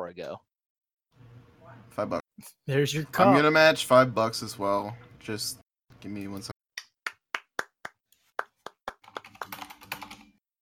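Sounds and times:
speech: 0.1 - 0.5, 1.9 - 6.5
sharp hand claps: 6.8 - 10.0.

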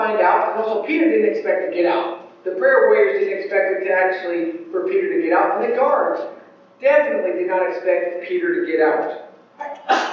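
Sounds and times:
speech: 0.2 - 10.1
person sneezing: 9.6 - 10.1.

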